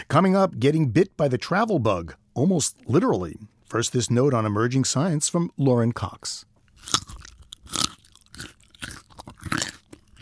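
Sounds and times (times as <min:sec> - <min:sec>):
speech: 0:00.0 - 0:07.2
person biting into and chewing a raw vegetable: 0:06.6 - 0:10.2.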